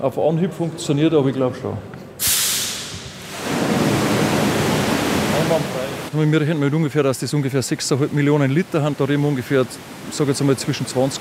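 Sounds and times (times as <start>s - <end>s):
speech: 0.0s - 2.3s, 5.5s - 11.1s
rushing water flooding an underground garage: 2.6s - 11.1s.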